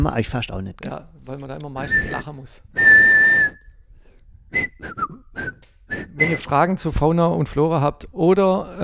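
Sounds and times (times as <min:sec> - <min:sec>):
speech: 0:00.0 - 0:03.6, 0:04.5 - 0:08.8
person whistling a tune: 0:02.8 - 0:03.8, 0:04.5 - 0:06.5.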